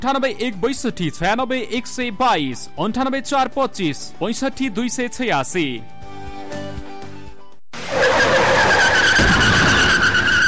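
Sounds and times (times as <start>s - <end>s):
speech: 0.0s - 6.6s
car tyres squealing while skidding: 7.8s - 10.4s
rough noisy rumble of a skidding car: 7.8s - 10.4s.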